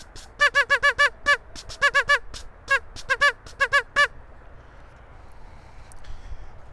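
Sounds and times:
duck call blown in nasal harmonic quacks: 0:00.0 - 0:04.1
faint noise: 0:00.0 - 0:06.7.

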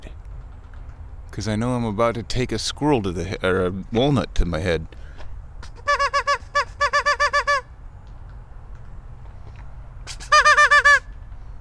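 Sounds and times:
low outdoor rumble: 0:00.0 - 0:11.6
speech: 0:01.4 - 0:05.0
person imitating duck calls at ducks: 0:05.7 - 0:07.6, 0:10.1 - 0:11.0.

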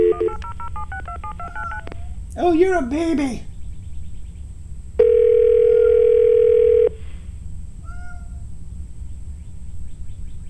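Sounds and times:
telephone line dial tone: 0:00.0 - 0:02.0, 0:05.0 - 0:07.0
low hum: 0:00.0 - 0:10.4
speech: 0:02.4 - 0:03.5.

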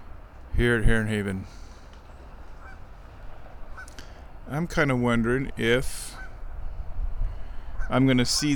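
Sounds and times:
steady low noise: 0:00.0 - 0:08.5
speech: 0:00.6 - 0:01.7, 0:04.5 - 0:06.2, 0:07.9 - 0:08.5
geese honking: 0:02.5 - 0:02.9, 0:03.6 - 0:04.0, 0:06.0 - 0:06.4.

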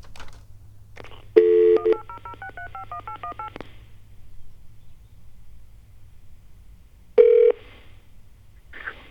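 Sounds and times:
low steady hum: 0:00.0 - 0:08.7
touch-tone keypad beeps dialing a toll-free phone number: 0:01.4 - 0:03.6.

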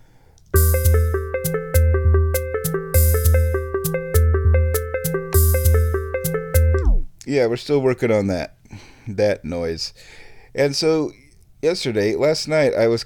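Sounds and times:
synthesizer repeating note sequence built around an A minor seventh chord: 0:00.6 - 0:07.1
bass line stepping between pitches in a looping pattern: 0:00.6 - 0:07.2
speech: 0:07.4 - 0:13.0.

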